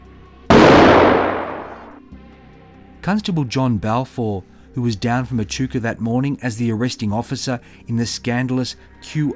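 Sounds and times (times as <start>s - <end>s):
pistol shot fired in a face-off in a city garden: 0.5s - 2.0s
speech: 3.1s - 9.3s.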